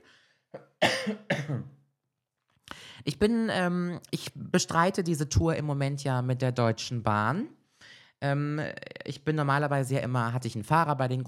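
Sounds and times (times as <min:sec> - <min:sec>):
person coughing with rasping coughs: 0:00.6 - 0:01.8
speech: 0:01.1 - 0:01.7, 0:03.1 - 0:07.6, 0:08.2 - 0:11.2.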